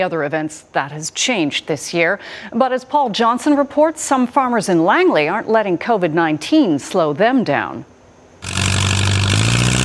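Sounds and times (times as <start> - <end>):
speech: 0.0 - 8.6
heavy tractor engine roaring during tractor pull: 8.4 - 9.8.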